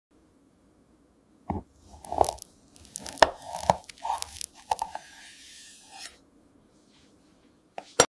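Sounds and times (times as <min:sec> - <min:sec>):
cake cutting: 0:01.9 - 0:06.2.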